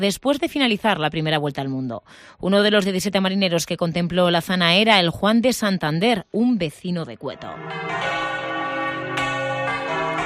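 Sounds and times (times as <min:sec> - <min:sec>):
speech: 0:00.0 - 0:08.2
church bells ringing across a city centre: 0:07.4 - 0:10.2.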